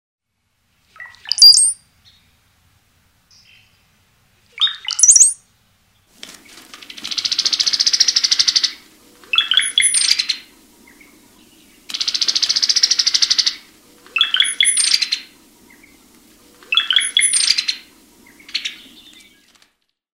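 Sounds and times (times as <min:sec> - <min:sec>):
Brown-headed Cowbird singing: 0:01.0 - 0:02.3, 0:04.6 - 0:05.4, 0:06.9 - 0:19.5.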